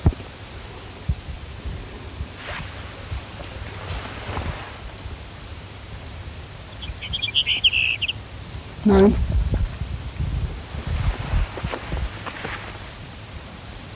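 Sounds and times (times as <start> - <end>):
hiss: 0.0 - 13.9
faint rustling: 0.5 - 6.7, 9.4 - 13.3
Brewer's sparrow song: 6.7 - 8.2
speech: 8.9 - 9.3.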